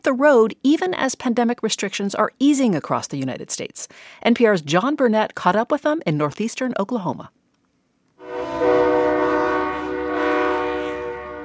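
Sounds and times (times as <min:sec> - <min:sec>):
speech: 0:00.0 - 0:07.4
big-rig truck air horn on the Will Rogers Turnpike in Oklahoma: 0:08.2 - 0:11.4.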